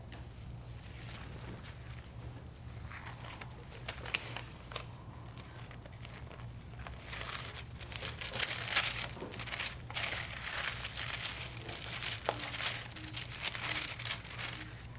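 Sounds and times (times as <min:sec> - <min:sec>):
low steady hum: 0:00.0 - 0:14.9
pages of a paper Bible rustling and crinkling as flipped: 0:00.7 - 0:14.9.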